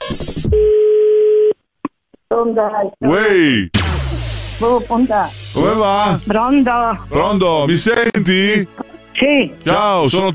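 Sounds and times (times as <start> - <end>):
telephone line tone as a call is placed: 0.5 - 1.6
speech: 2.3 - 3.8, 4.6 - 10.3.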